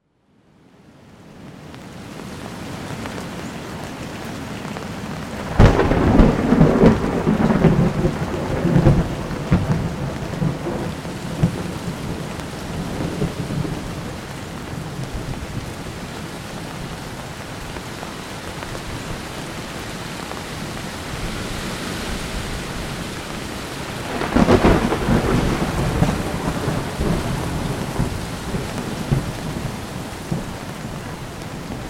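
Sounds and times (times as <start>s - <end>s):
thunderstorm: 5.4s - 16.0s, 21.1s - 31.8s.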